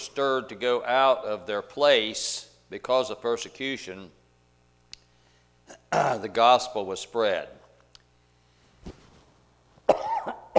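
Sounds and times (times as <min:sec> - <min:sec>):
speech: 0:00.1 - 0:04.2, 0:05.7 - 0:07.6
person coughing: 0:09.9 - 0:10.5.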